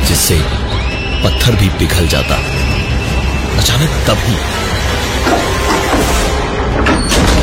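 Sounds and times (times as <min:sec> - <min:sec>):
speech: 0:00.2 - 0:02.8, 0:03.6 - 0:05.4
heavy door bursting open loudly: 0:05.2 - 0:07.4.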